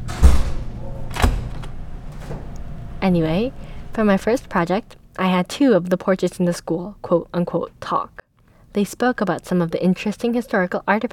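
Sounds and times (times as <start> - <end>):
door closing in a school refectory doorway: 0.0 - 3.0
speech: 3.0 - 11.1.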